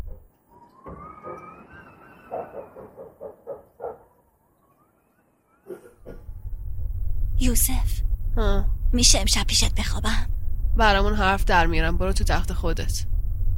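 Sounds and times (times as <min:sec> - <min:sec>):
pigeons cooing under a roof: 0:01.2 - 0:04.2
low rumble: 0:06.0 - 0:13.5
speech: 0:07.4 - 0:13.1.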